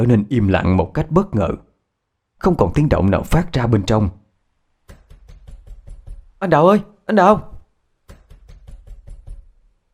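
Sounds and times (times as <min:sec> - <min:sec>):
speech: 0:00.0 - 0:01.7, 0:02.4 - 0:04.2, 0:06.4 - 0:07.5
pounding on a door: 0:04.9 - 0:06.4, 0:08.0 - 0:09.7.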